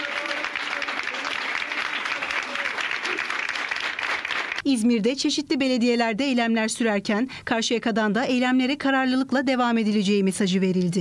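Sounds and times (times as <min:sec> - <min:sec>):
protesting municipal workers applauding in a city council hall: 0:00.0 - 0:04.6
speech: 0:04.6 - 0:10.9.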